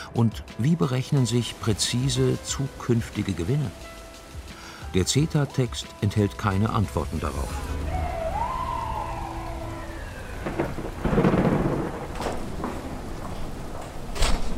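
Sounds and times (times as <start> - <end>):
speech: 0.1 - 4.0, 4.9 - 7.9
steady rain: 0.6 - 14.5
thunder rumbling as a storm front crosses a city: 1.2 - 14.5
wailing siren-like tone: 7.3 - 11.1.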